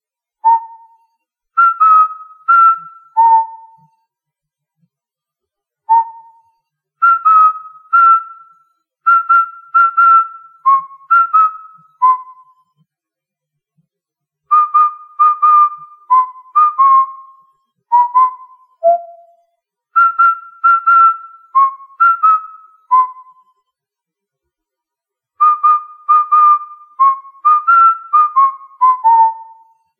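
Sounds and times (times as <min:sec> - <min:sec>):
person whistling: 0:00.4 - 0:04.1, 0:05.9 - 0:12.7, 0:14.5 - 0:19.4, 0:20.0 - 0:23.6, 0:25.4 - 0:29.9.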